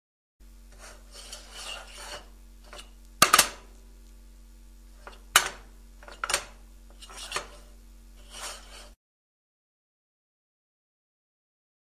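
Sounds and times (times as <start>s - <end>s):
faint steady hum: 0.4s - 9.0s
frying pan being scraped: 0.6s - 3.7s, 4.9s - 9.0s.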